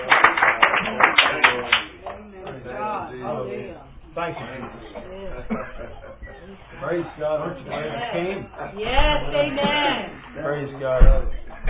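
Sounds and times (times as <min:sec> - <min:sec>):
audience clapping hands: 0:00.0 - 0:02.2
speech: 0:04.2 - 0:11.6.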